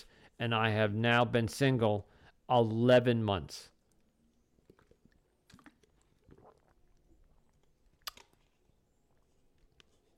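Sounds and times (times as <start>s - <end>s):
speech: 0.0s - 3.7s
person sipping water: 3.9s - 10.1s.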